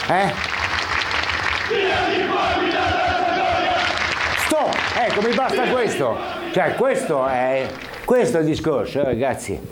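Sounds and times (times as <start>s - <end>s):
speech: 0.1s - 0.5s, 1.7s - 3.3s, 4.5s - 9.6s
large crowd of football fans roaring and chanting in protest: 1.5s - 8.0s.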